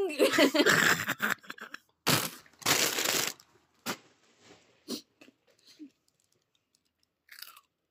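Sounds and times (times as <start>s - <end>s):
person laughing and vocalizing: 0.1s - 1.9s
loud crunchy chewing: 7.3s - 7.7s.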